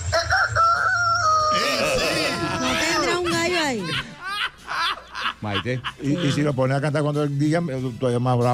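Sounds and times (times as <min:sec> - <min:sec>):
person imitating a rooster's crow: 0:00.8 - 0:03.2
laughter: 0:01.6 - 0:06.6
speech: 0:05.4 - 0:08.5.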